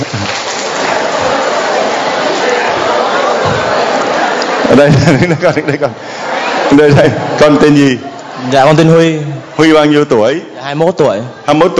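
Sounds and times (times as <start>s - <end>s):
crowd clapping: 0.0s - 4.9s
laughter: 0.6s - 8.5s
speech: 4.7s - 11.7s.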